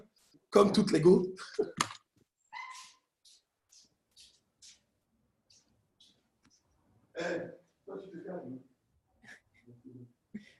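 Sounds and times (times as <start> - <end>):
speech: 0.5 - 2.0, 7.2 - 8.6
small dog yapping and yelping: 2.5 - 3.0.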